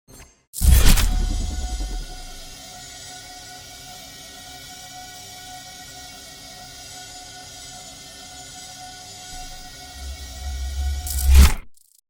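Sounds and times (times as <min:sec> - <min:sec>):
portal sound effect: 0:00.6 - 0:02.6, 0:09.3 - 0:11.6.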